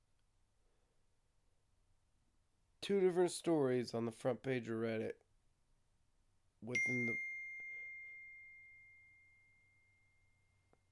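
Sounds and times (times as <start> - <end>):
speech: 2.9 - 5.2, 6.6 - 7.3
bright electronic ding from a phone receiving a text message: 6.7 - 8.9.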